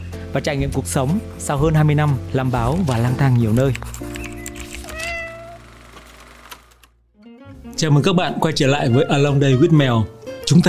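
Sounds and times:
speech: 0:00.3 - 0:04.2, 0:07.8 - 0:10.6
cat meowing: 0:04.8 - 0:05.6.

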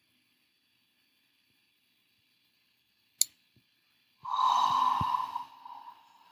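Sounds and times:
deep breath in and out: 0:04.2 - 0:06.2.

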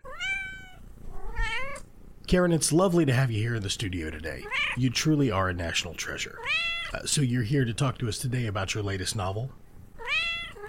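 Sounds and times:
house cat meowing: 0:00.0 - 0:01.9, 0:04.4 - 0:04.8, 0:06.3 - 0:07.0, 0:10.0 - 0:10.6
speech: 0:02.3 - 0:09.6.

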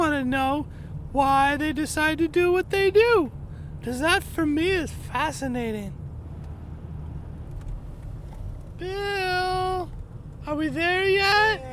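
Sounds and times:
car slowing down onto a dirt road, low engine rumble: 0:00.0 - 0:11.7
speech: 0:00.3 - 0:06.0, 0:08.8 - 0:09.4, 0:10.4 - 0:11.7
light rattles: 0:06.3 - 0:10.6.

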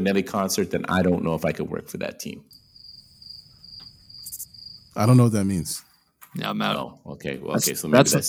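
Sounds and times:
speech: 0:00.0 - 0:02.6, 0:05.0 - 0:08.2
crickets chirping: 0:02.4 - 0:06.5.

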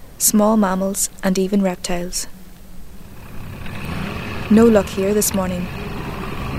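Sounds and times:
speech: 0:00.2 - 0:02.4, 0:04.5 - 0:05.8
engine of a small blue motorboat leaving the marina: 0:03.0 - 0:06.5.

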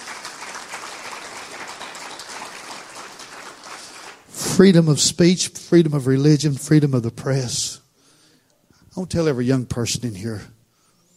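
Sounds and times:
crowd applauding: 0:00.0 - 0:04.4
speech: 0:04.6 - 0:07.8, 0:09.0 - 0:10.6.

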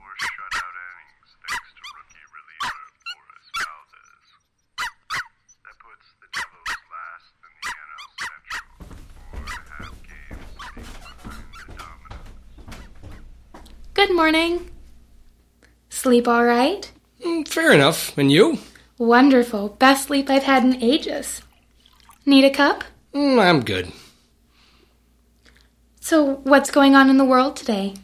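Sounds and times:
dog barking: 0:00.1 - 0:00.7, 0:01.4 - 0:04.0, 0:04.8 - 0:05.3, 0:06.3 - 0:07.0, 0:07.6 - 0:08.8
speech: 0:14.1 - 0:14.7, 0:16.0 - 0:21.5, 0:22.3 - 0:24.0, 0:26.1 - 0:28.0.

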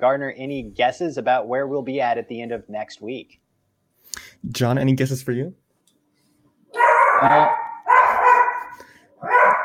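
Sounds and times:
speech: 0:00.0 - 0:03.4, 0:04.4 - 0:05.6, 0:07.2 - 0:07.6
dog barking: 0:06.7 - 0:09.6.

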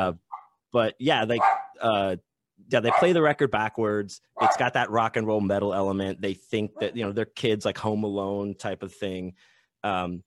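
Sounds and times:
speech: 0:00.0 - 0:10.2
dog barking: 0:01.4 - 0:01.8, 0:02.9 - 0:03.1, 0:04.4 - 0:04.7.

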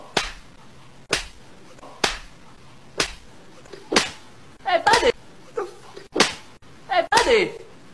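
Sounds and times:
intense loud sharp slaps: 0:00.0 - 0:00.5, 0:01.1 - 0:01.4, 0:02.0 - 0:02.4, 0:03.0 - 0:04.3, 0:06.0 - 0:07.4.

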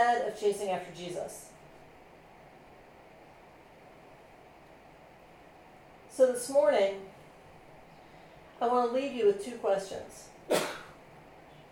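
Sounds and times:
speech: 0:00.0 - 0:01.5, 0:06.2 - 0:07.1, 0:08.6 - 0:10.8
faint sneeze: 0:10.5 - 0:11.0.

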